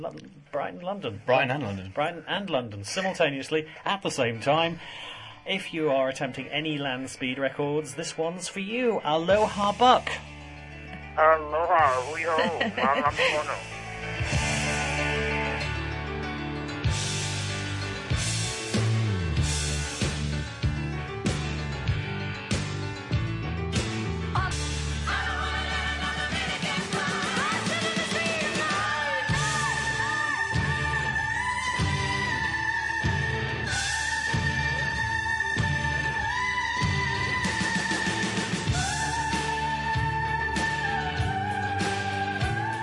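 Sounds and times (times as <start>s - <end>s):
speech: 0.0s - 10.3s, 11.2s - 13.8s
loud dense rock track with full band: 6.3s - 42.8s
laughter: 11.9s - 13.6s.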